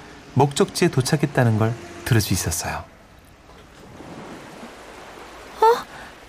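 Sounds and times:
ocean waves breaking on shore: 0.0 - 6.2
speech: 0.4 - 2.9.

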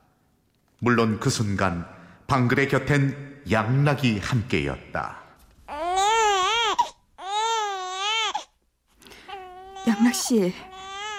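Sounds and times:
speech: 0.8 - 5.2, 10.1 - 10.8
newborn baby wailing in high-pitched cries: 5.6 - 8.6, 9.2 - 11.1.

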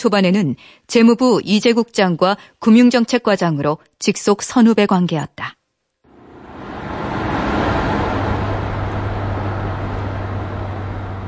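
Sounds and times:
speech: 0.0 - 5.6
broadband road rumble from inside a moving car: 6.1 - 11.2
low car engine hum: 6.1 - 11.2.

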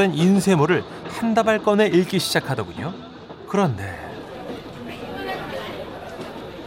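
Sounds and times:
speech: 0.0 - 4.0
dense crowd chatter in a busy moving train carriage: 0.0 - 6.6.

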